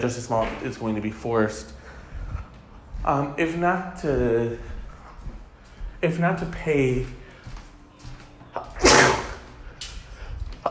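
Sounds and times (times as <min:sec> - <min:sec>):
speech: 0:00.0 - 0:01.8, 0:03.0 - 0:04.8, 0:06.0 - 0:07.2
loud sharp sneeze from someone with allergies: 0:08.8 - 0:09.5.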